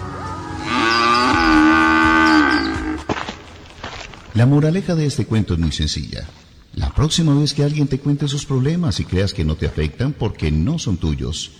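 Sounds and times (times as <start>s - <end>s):
cow mooing: 0.4s - 3.1s
speech: 4.4s - 6.4s, 7.0s - 11.5s.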